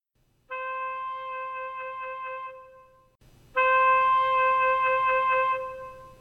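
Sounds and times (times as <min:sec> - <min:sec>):
saxophone playing C4 soft then loud: 0:00.5 - 0:03.0, 0:03.6 - 0:06.1.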